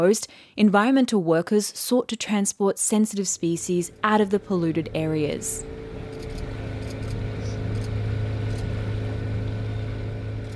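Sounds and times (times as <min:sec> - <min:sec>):
speech: 0:00.0 - 0:05.8
boat engine droning on the water: 0:03.3 - 0:10.5.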